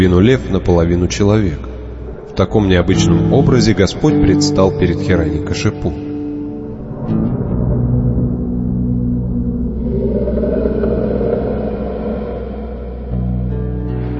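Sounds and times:
speech: 0.0 - 1.7, 2.4 - 6.0
ominous thunder rumbling: 6.8 - 13.9.

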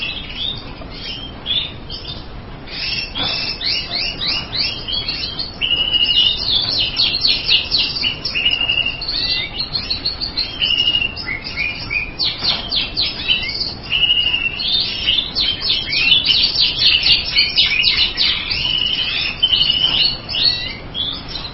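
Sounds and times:
birds chirping, twittering and whistling: 0.0 - 21.5
rough background noise: 0.0 - 21.5.

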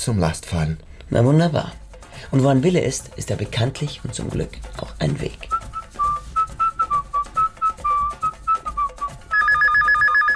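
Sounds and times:
speech: 0.0 - 5.6
whistled melody played over a rhythmic beat: 5.4 - 10.3
telephone ringing with electronic trill: 9.3 - 10.3.

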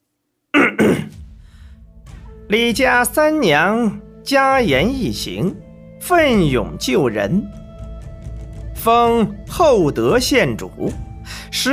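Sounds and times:
palace official clearing his throat before reading an imperial edict: 0.6 - 1.2
speech: 2.5 - 7.6, 8.8 - 11.7.

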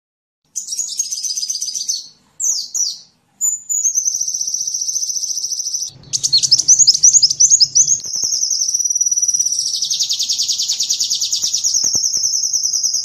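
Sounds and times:
Van Hasselt's sunbird song: 0.5 - 13.0
low hum: 5.9 - 8.6.

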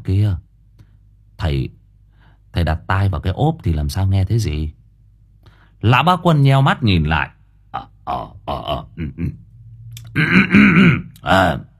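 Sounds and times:
speech: 0.0 - 0.4, 1.4 - 1.8, 2.6 - 4.8, 5.8 - 9.4, 10.2 - 11.7
old man clearing throat before answering a phone: 7.8 - 9.4, 10.0 - 11.2.

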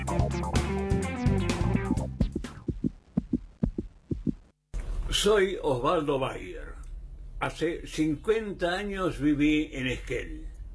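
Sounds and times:
loud music: 0.0 - 2.8
heartbeat thumping: 1.9 - 4.5
speech: 5.2 - 6.8, 7.4 - 10.5.

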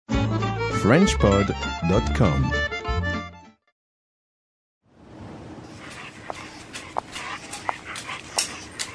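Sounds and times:
speech: 0.8 - 2.7
steady outdoor noise in a park: 4.8 - 8.9
dog panting and snuffling in a park: 5.6 - 8.9.

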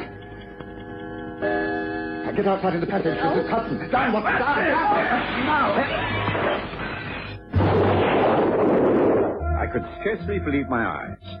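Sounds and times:
speech: 2.3 - 6.8, 9.7 - 11.3
window glass and debris shattering: 7.5 - 9.4
parcel bomb explosion blast: 7.5 - 9.7.

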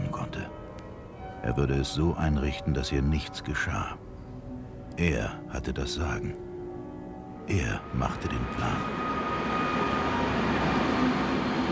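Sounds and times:
faint tonal hums: 0.0 - 11.7
speech: 1.5 - 4.0, 5.0 - 6.4, 7.5 - 9.0
train arriving by rail in Munich: 7.2 - 11.7.

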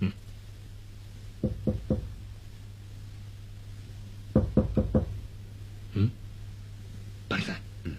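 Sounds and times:
knocking on a door: 1.4 - 2.2, 4.3 - 5.2.

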